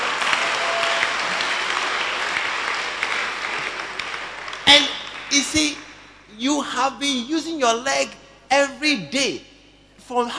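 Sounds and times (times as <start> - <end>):
crowd clapping: 0.0 - 6.3
speech: 4.8 - 5.8, 6.4 - 9.5, 10.1 - 10.3.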